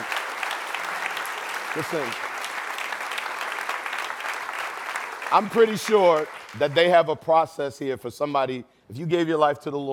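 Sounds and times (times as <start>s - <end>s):
audience applause at a church service: 0.0s - 7.1s
speech: 1.8s - 2.3s, 5.3s - 9.9s.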